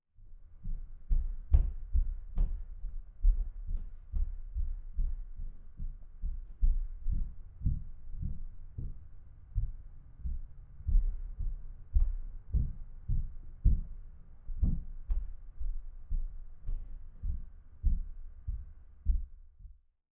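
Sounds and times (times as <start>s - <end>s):
female footsteps walking on stairs: 0.4s - 19.4s.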